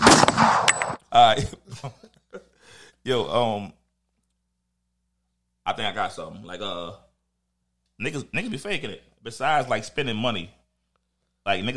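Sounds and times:
gunshot sound effects: 0.0s - 1.0s
speech: 1.2s - 2.0s, 3.0s - 3.8s, 5.6s - 7.0s, 8.0s - 10.6s, 11.4s - 11.7s
brief vocal sounds: 8.4s - 8.8s.

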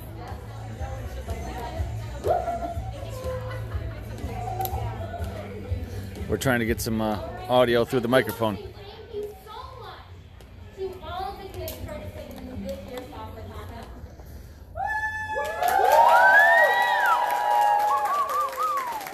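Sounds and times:
crowd chatter: 0.0s - 14.6s
speech: 2.2s - 2.5s, 6.3s - 8.7s
cheers and high excited whoops: 14.8s - 19.1s
crowd applauding for participants: 15.2s - 19.1s.

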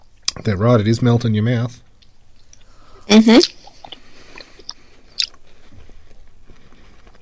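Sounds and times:
speech: 0.4s - 1.9s, 3.1s - 3.6s
crunchy chewing of three-layer chocolate hazelnut wafer biscuit: 3.4s - 7.1s.

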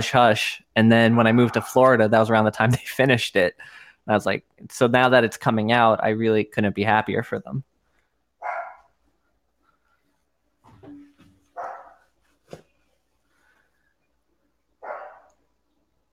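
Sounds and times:
speech: 0.0s - 7.7s
dog barking: 1.3s - 1.8s, 8.4s - 8.9s, 11.6s - 12.0s, 14.8s - 15.4s
quiet knocks and shuffles: 9.5s - 14.1s.

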